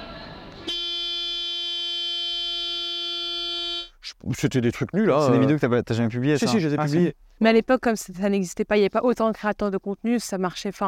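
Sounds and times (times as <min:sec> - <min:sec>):
horn of a car on display in a shopping mall blaring: 0:00.6 - 0:04.0
speech: 0:04.1 - 0:10.8.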